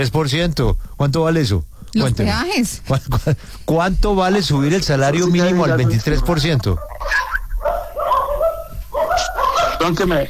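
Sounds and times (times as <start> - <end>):
speech: 0.0 - 7.3, 9.9 - 10.2
small dogs barking: 4.2 - 10.2.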